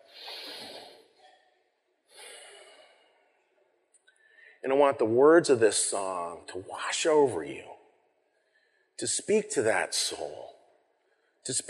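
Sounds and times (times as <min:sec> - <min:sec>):
big deep breath: 0:00.0 - 0:01.0, 0:02.1 - 0:03.4, 0:04.1 - 0:04.6, 0:08.3 - 0:09.0
speech: 0:04.6 - 0:07.8, 0:09.0 - 0:10.6, 0:11.4 - 0:11.6.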